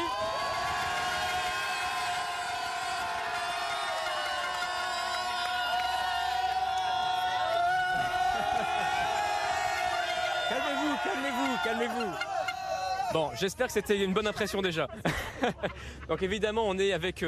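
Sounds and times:
football supporters cheering and shouting inside a bus: 0.0 - 13.4
laughter: 7.9 - 13.2, 13.8 - 16.5
speech: 13.2 - 17.2.

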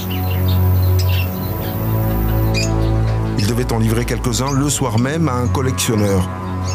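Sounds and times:
exotic birds chirping and tweeting: 0.0 - 6.7
speech: 3.6 - 6.7.

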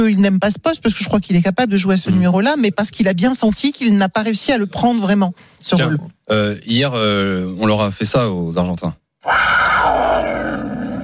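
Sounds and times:
speech: 0.0 - 10.8
puma roaring: 9.2 - 11.0.

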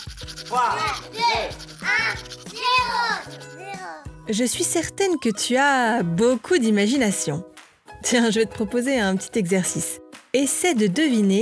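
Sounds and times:
toothbrush scrubbing teeth: 0.0 - 4.2
speech: 0.5 - 11.4.

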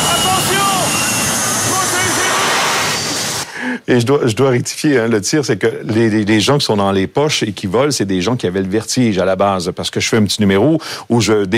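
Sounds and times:
jet airplane passing overhead: 0.0 - 3.6
speech: 3.9 - 11.5.

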